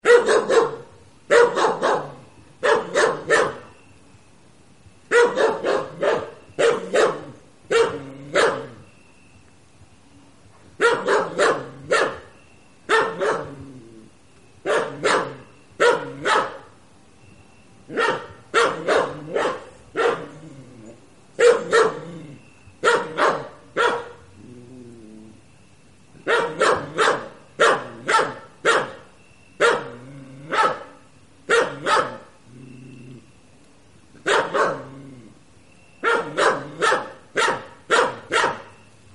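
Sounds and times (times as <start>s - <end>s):
dog barking: 0.0s - 3.7s, 5.1s - 8.8s, 10.8s - 12.3s, 12.9s - 13.6s, 14.7s - 16.7s, 17.9s - 20.3s, 21.4s - 22.0s, 22.8s - 24.2s, 26.2s - 29.0s, 29.6s - 32.3s, 34.2s - 34.9s, 36.0s - 38.7s.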